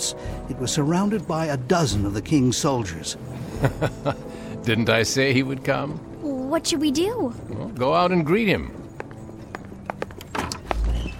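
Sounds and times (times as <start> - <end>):
speech: 0.1 - 8.8
laughter: 3.4 - 4.3
carriage horses' hooves clip-clopping: 7.4 - 11.1.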